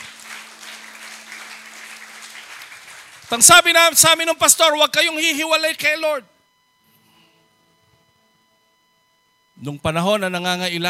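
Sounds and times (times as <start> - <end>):
church congregation applauding: 0.0 - 4.5
speech: 3.3 - 6.3, 9.6 - 10.8.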